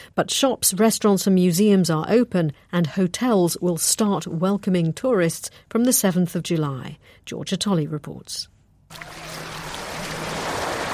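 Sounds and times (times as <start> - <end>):
speech: 0.2 - 9.4
sea water splashing and lapping as someone paddles: 8.9 - 10.9.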